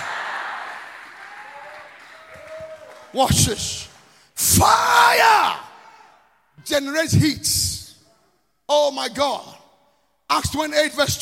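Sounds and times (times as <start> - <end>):
crowd clapping hands: 0.0 - 4.2
speech: 3.1 - 5.6, 6.6 - 7.7, 8.7 - 9.6, 10.3 - 11.2.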